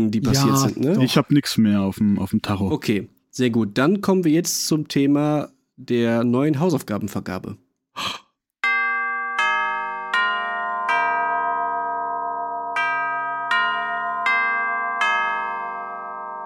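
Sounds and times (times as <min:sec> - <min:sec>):
speech: 0:00.0 - 0:08.2
school bell chime playing a slow melody: 0:08.6 - 0:16.4.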